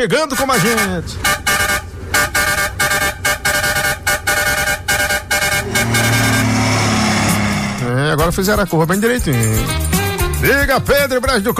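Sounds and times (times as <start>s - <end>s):
speech: 0.0s - 1.6s, 8.1s - 11.5s
passing truck engine rumble: 0.0s - 9.8s
passing truck horn blasts: 0.3s - 7.9s.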